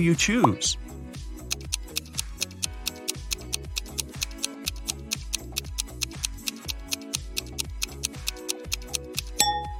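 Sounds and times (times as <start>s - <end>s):
speech: 0.0s - 0.9s
countdown timer ticking quickly: 1.4s - 9.7s.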